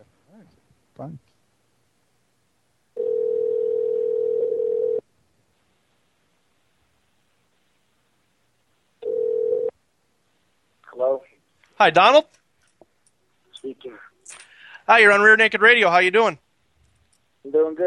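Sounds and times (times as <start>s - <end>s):
speech: 0.3s - 1.3s, 11.8s - 12.4s, 14.9s - 16.4s, 17.4s - 17.8s
outgoing phone call ringback tone: 3.0s - 5.0s, 9.0s - 9.7s.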